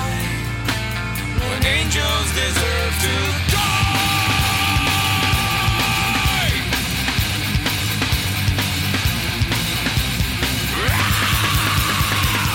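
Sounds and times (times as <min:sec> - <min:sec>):
distorted guitars: 0:00.0 - 0:12.5
loud dense rock song: 0:00.0 - 0:12.5
harsh screamed vocals in a rock song: 0:03.4 - 0:06.7, 0:10.7 - 0:12.5
pounding drums: 0:03.4 - 0:12.5.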